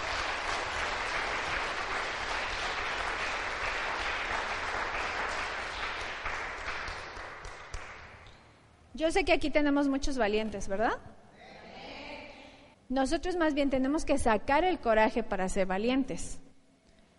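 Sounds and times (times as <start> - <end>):
audience applause: 0.0 - 8.1
speech: 9.0 - 11.2, 12.9 - 16.4.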